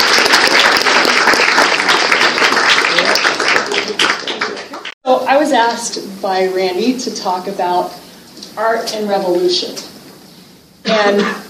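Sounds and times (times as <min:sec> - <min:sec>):
large crowd applauding: 0:00.0 - 0:05.0
speech: 0:05.4 - 0:08.0, 0:08.6 - 0:09.8, 0:10.9 - 0:11.4.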